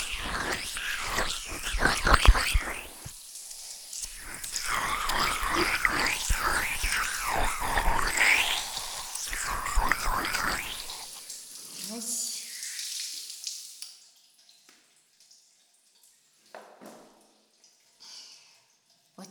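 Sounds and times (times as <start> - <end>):
faint vocal sounds: 0.0 - 3.2, 4.0 - 11.3
water poured out to rinse: 0.0 - 19.2.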